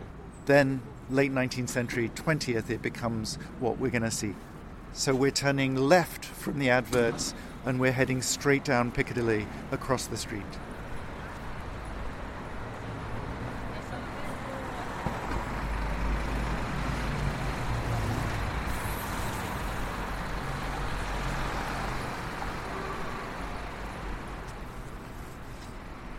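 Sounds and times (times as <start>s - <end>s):
busy street traffic rumbling: 0.0s - 26.1s
speech: 0.5s - 10.7s.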